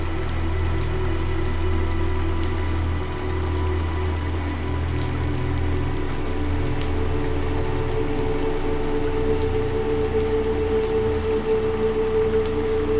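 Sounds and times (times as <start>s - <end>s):
constant low drone: 0.0s - 12.9s
soft sustained musical tones: 0.0s - 12.9s
steady gentle rain patter: 0.0s - 12.9s.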